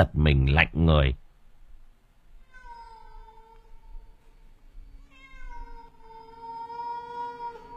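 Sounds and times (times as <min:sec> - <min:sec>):
speech: 0:00.0 - 0:01.2
large black cat meowing faintly: 0:02.4 - 0:04.3, 0:05.0 - 0:07.7.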